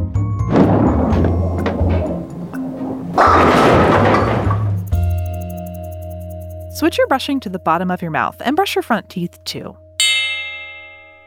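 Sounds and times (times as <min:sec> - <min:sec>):
heavy bowling ball rolling down a lane: 0:00.1 - 0:06.2
speech: 0:06.8 - 0:09.8.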